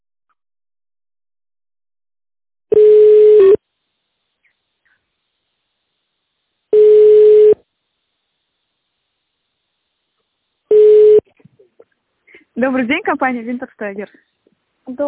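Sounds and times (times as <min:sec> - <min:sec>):
telephone ringback tone while waiting to be connected to a company secretary: 0:02.7 - 0:03.6, 0:06.8 - 0:07.6, 0:10.7 - 0:11.2
speech: 0:12.6 - 0:14.3, 0:14.9 - 0:15.0.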